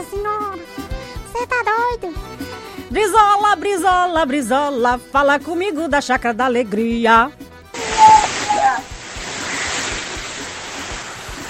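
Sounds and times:
speech: 0:01.4 - 0:07.4
heavy rain downpour: 0:07.8 - 0:11.4.

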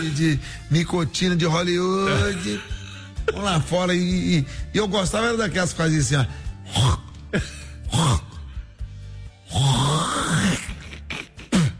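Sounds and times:
speech: 0:00.0 - 0:08.2
voice imitating throat clearing: 0:02.0 - 0:03.0, 0:06.6 - 0:08.6, 0:09.5 - 0:11.7.

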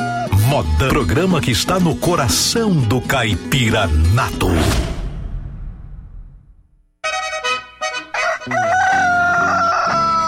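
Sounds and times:
speech: 0:00.5 - 0:04.8
low rumble: 0:04.4 - 0:06.9
rooster crowing: 0:08.1 - 0:10.2.

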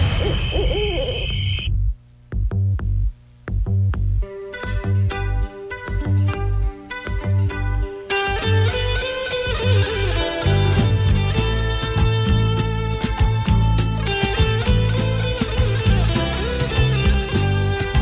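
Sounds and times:
owl hooting: 0:00.0 - 0:01.7
lively music with punchy drums and bright bouncing melody: 0:02.4 - 0:18.0.

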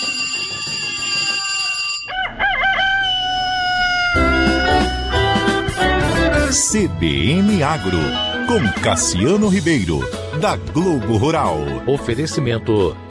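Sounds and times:
rooster crowing in the morning: 0:01.3 - 0:05.8
steady musical background: 0:04.2 - 0:13.1
speech: 0:06.5 - 0:13.1.

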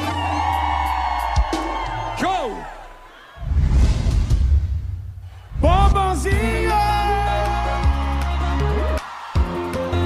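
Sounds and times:
people whooping: 0:00.0 - 0:03.4, 0:06.6 - 0:10.0
large concert crowd in Goiânia roaring and cheering: 0:00.0 - 0:10.0.

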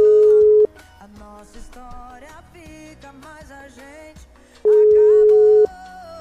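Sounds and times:
telephone ringback tone as a radio station calls a listener: 0:00.0 - 0:00.8, 0:04.6 - 0:05.7
music: 0:00.0 - 0:06.1.

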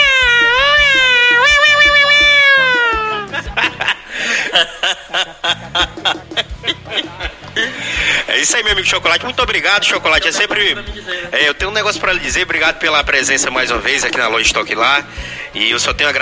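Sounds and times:
person imitating a cat meowing inside a store: 0:00.0 - 0:03.3
short bursts of laughter: 0:02.6 - 0:08.4, 0:10.1 - 0:10.9
speech: 0:08.5 - 0:16.1.

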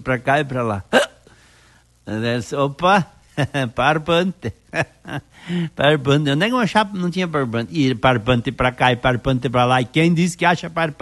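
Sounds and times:
speech: 0:00.0 - 0:01.1, 0:02.1 - 0:11.0
person imitating the hiccups of a drunk old man: 0:00.8 - 0:01.3.

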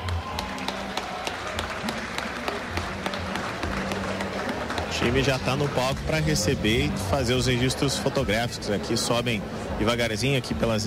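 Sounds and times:
crowd applauding at a municipal trophy ceremony: 0:00.0 - 0:06.9
speech: 0:05.0 - 0:10.8.

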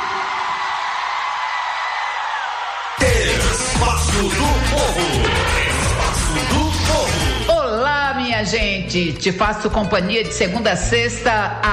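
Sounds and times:
large crowd shouting and cheering: 0:00.0 - 0:07.6
speech: 0:08.4 - 0:11.7.

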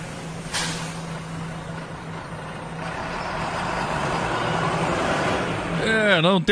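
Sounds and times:
large bus idling and rumbling past: 0:00.0 - 0:06.5
bus air-brake hiss: 0:00.2 - 0:01.2
speech: 0:06.2 - 0:06.5.

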